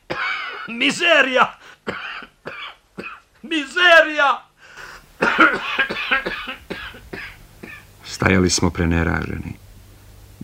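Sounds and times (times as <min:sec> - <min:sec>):
exhausted father coughing harshly and choking while leaning against a wall: 0:00.1 - 0:01.2, 0:01.8 - 0:03.3, 0:05.2 - 0:07.9
speech: 0:00.7 - 0:02.0, 0:03.5 - 0:04.4, 0:05.2 - 0:06.2, 0:08.2 - 0:09.6.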